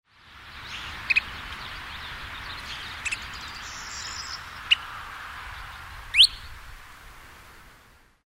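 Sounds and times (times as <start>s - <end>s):
Kentish plover calling: 0.6s - 4.9s, 6.1s - 6.6s.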